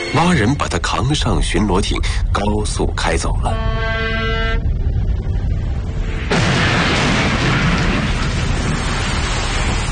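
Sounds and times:
speech: 0.2 - 4.2
brief tonal hum: 2.4 - 6.4
ship explosion from a time bomb: 4.9 - 9.9.

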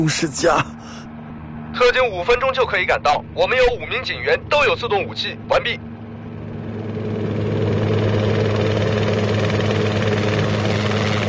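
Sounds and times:
speech: 0.0 - 1.1, 1.8 - 5.9
helicopter descending to land with thudding rotor roar and heavy engine whine: 0.0 - 11.2.

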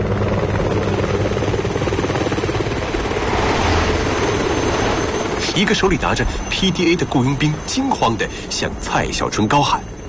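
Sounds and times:
Bell 206 helicopter approaching near a coastal road: 0.0 - 10.0
speech: 5.6 - 9.9.

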